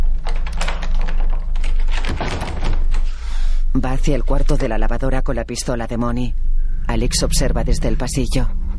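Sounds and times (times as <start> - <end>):
padlock being fitted onto a patio door: 0.0 - 3.1
speech: 3.8 - 8.6.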